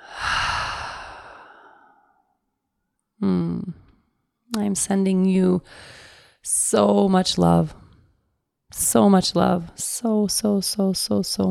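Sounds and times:
breathy exhale through an open mouth during a guided breathing exercise: 0.0 - 2.2
speech: 3.2 - 3.8, 4.5 - 7.8, 8.7 - 11.4.

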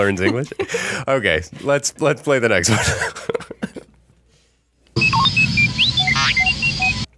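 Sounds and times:
speech: 0.0 - 3.4
laughter: 0.0 - 3.9
robot droid beeping and whistling with electronic chirps: 5.0 - 7.1.

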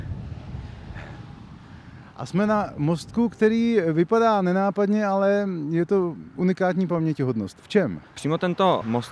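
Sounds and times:
wind blowing outdoors buffeting the microphone: 0.0 - 4.8
speech: 2.2 - 9.1.

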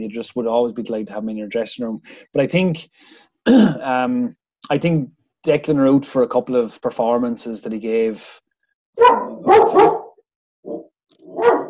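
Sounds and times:
speech: 0.0 - 8.4, 9.0 - 10.0
dog barking: 9.0 - 11.6.

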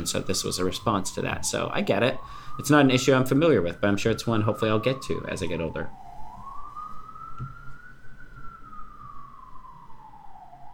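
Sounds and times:
speech: 0.0 - 6.0
low rumbling traffic noise: 0.0 - 7.3
police car siren wailing: 0.0 - 10.7.

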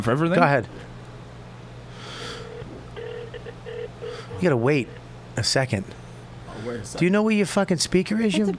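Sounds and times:
speech: 0.0 - 0.9, 4.4 - 6.0, 6.6 - 8.5
low constant hum: 0.0 - 8.5
phone call dialing tones: 2.5 - 5.0.

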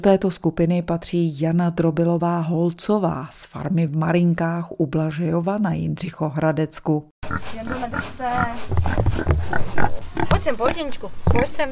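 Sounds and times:
speech: 0.0 - 11.6
pig grunting: 7.2 - 11.6.

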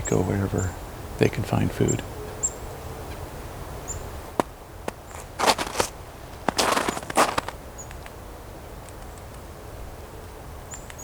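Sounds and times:
speech: 0.1 - 2.2
chickadee pecking at a plant gall: 3.1 - 9.5.

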